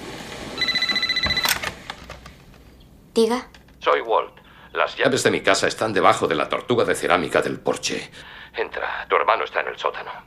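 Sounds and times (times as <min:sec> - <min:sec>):
telephone beside a bed ringing with an electronic trill: 0:00.6 - 0:01.8
speech: 0:03.2 - 0:10.2.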